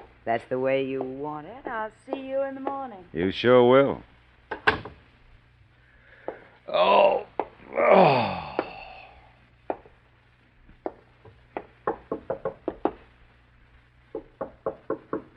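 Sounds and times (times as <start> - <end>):
low hum: 0.0 - 15.3
speech: 0.2 - 4.1, 6.7 - 7.2
knocking on an apartment front door: 11.6 - 13.0, 14.1 - 15.3.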